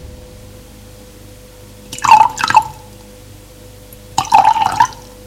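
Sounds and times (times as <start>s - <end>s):
water poured from a carafe into a glass: 1.9s - 2.8s, 4.2s - 5.1s.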